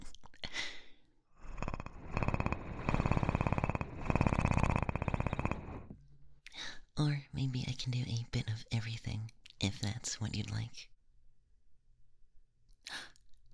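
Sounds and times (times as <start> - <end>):
person imitating a cat purring with their voice: 1.4 - 6.0
speech: 7.0 - 11.0.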